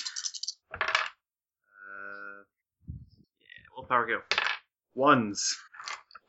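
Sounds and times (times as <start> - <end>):
dice clattering across a hard table: 0.0 - 1.2, 4.3 - 4.7
speech: 3.9 - 4.4, 5.0 - 5.7.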